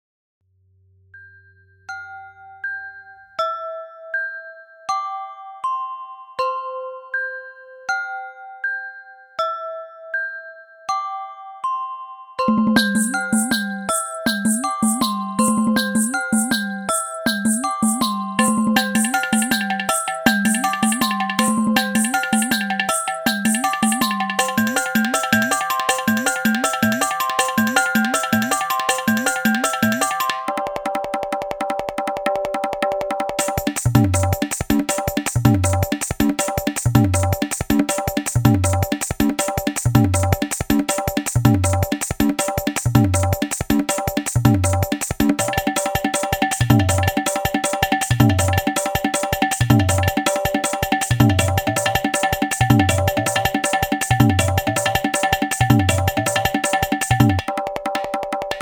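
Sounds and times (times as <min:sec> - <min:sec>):
bells: 0:01.2 - 0:31.1, 0:33.4 - 0:57.4
drums: 0:12.6 - 0:58.6.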